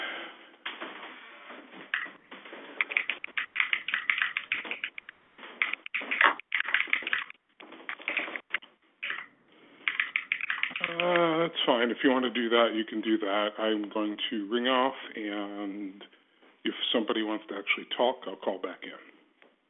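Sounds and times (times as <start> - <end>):
computer keyboard keys clacking in typing bursts: 2.8 - 11.2
speech: 11.8 - 16.1, 16.7 - 19.1.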